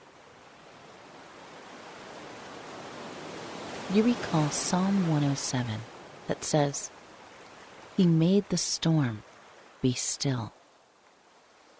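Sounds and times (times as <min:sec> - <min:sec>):
ocean waves washing on the shore: 0:00.0 - 0:11.7
speech: 0:03.9 - 0:07.0, 0:08.0 - 0:10.6.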